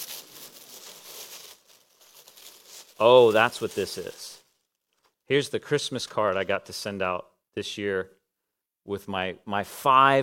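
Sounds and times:
tissue paper crinkling as a gift is unwrapped: 0:00.0 - 0:05.1
speech: 0:03.0 - 0:04.3, 0:05.3 - 0:08.2, 0:08.8 - 0:10.2.

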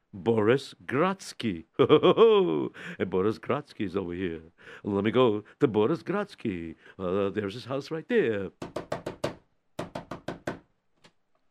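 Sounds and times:
speech: 0:00.1 - 0:08.8
peddler knocking on a wooden house door at night: 0:08.6 - 0:10.6.

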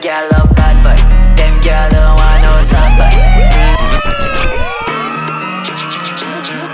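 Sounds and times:
thumping musical backing with heavy low bass: 0:00.0 - 0:05.1
speech: 0:00.1 - 0:00.5
electronic siren wailing: 0:02.1 - 0:06.7.

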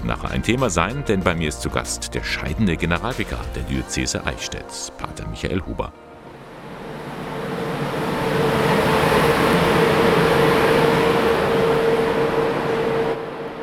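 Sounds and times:
speech: 0:00.0 - 0:06.1
train arriving at Ingolstadt main station in Germany: 0:00.0 - 0:13.6
sustained high whine of an arriving train: 0:06.0 - 0:13.6.

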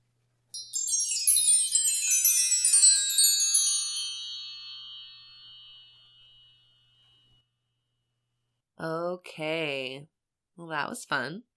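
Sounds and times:
wind chime ringing: 0:00.5 - 0:07.4
speech: 0:08.8 - 0:11.5.

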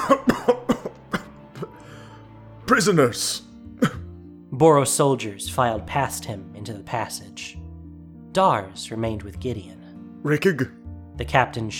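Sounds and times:
person coughing: 0:00.0 - 0:01.8, 0:03.8 - 0:04.1
speech: 0:02.7 - 0:03.9, 0:04.6 - 0:07.6, 0:08.4 - 0:11.7.

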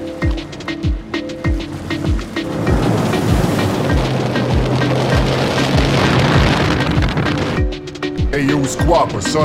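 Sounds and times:
low thumps of water slapping: 0:00.0 - 0:08.0
ocean waves: 0:00.0 - 0:09.4
strong wind gusting across the microphone: 0:01.0 - 0:08.2
speech: 0:08.7 - 0:09.4.

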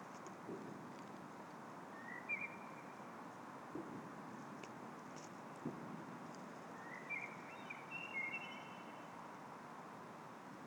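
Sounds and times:
steady background hiss: 0:00.0 - 0:10.6
common blackbird whistled song at Årstadal at Christmas time: 0:02.0 - 0:02.8, 0:06.8 - 0:09.0.

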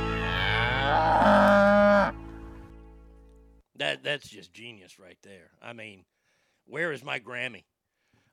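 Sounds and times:
cow mooing in a long loud bellow: 0:00.2 - 0:02.3
speech: 0:04.0 - 0:07.7.

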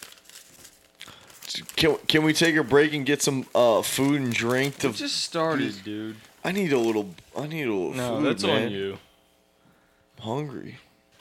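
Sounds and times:
score paper being crumpled and torn: 0:00.0 - 0:07.5
speech: 0:01.8 - 0:09.1, 0:10.2 - 0:10.9.

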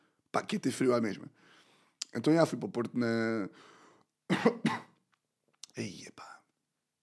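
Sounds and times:
speech: 0:00.4 - 0:01.5, 0:02.1 - 0:04.8, 0:05.8 - 0:06.4
harsh coughs: 0:04.3 - 0:05.0.

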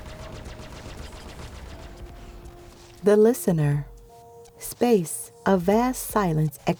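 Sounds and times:
laser cannon fire: 0:00.0 - 0:02.3
speech: 0:03.0 - 0:03.9, 0:04.6 - 0:06.7.

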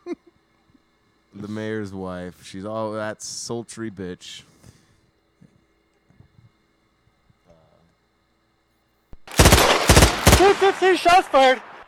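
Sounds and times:
speech: 0:01.4 - 0:04.5, 0:10.5 - 0:11.7
gunshot sound effect: 0:09.2 - 0:11.8.

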